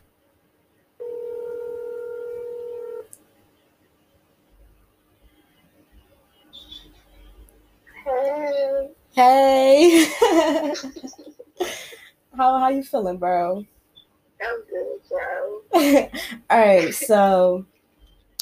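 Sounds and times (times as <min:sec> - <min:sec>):
telephone dial tone: 0:01.0 - 0:03.1
speech: 0:09.2 - 0:11.3, 0:12.4 - 0:13.7, 0:15.8 - 0:17.7
laughter: 0:09.8 - 0:12.0, 0:15.8 - 0:17.3.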